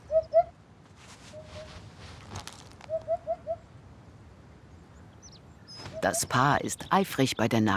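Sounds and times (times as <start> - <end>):
hoopoe soft hooting call: 0.0 - 0.6, 2.9 - 3.6
faint rustle: 0.8 - 3.2
speech: 6.0 - 7.7.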